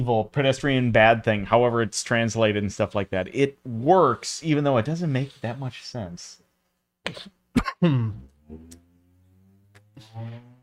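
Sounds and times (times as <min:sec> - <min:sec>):
speech: 0:00.0 - 0:06.4, 0:07.0 - 0:08.8, 0:10.0 - 0:10.5
small cough with throat-clearing: 0:07.1 - 0:08.3.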